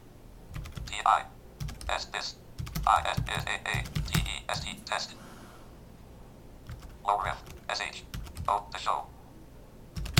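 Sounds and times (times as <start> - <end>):
typing on a computer keyboard in a word processor: 0.5 - 1.0, 1.6 - 2.0, 2.6 - 4.4, 6.7 - 8.6, 10.0 - 10.1
speech: 1.1 - 5.2, 7.1 - 9.1.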